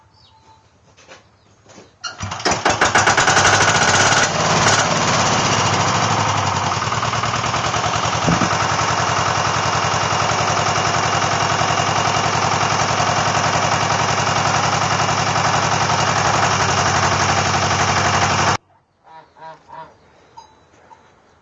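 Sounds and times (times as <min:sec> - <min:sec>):
mower engine sputtering, starting and running: 0:02.1 - 0:18.6
faint rattles: 0:06.6 - 0:18.6.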